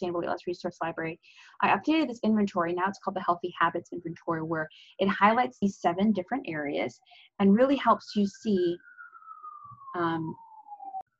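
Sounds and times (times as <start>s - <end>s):
speech: 0.0s - 8.9s, 10.0s - 10.4s
emergency vehicle siren passing outside: 6.0s - 11.1s.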